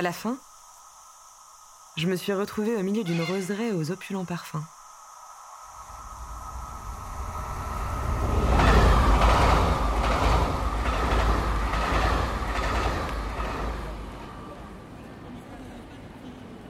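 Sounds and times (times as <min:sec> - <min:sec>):
speech: 0:00.0 - 0:00.5, 0:02.0 - 0:04.8
train rumbling past: 0:05.7 - 0:16.6
busy railway station ambience: 0:06.6 - 0:16.6
train wheels clattering over rail joints: 0:08.0 - 0:14.2.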